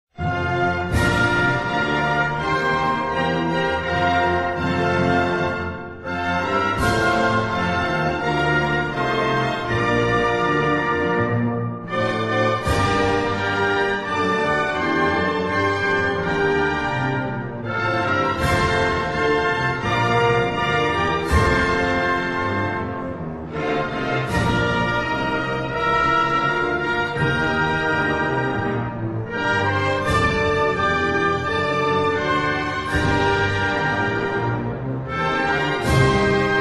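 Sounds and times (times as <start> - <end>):
anthem music: 0.2 - 36.6.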